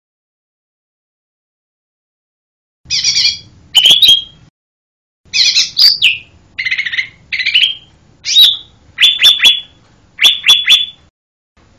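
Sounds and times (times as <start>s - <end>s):
lesser green leafbird song with harsh buzzy chattering bursts: 2.9s - 4.5s, 5.3s - 11.1s.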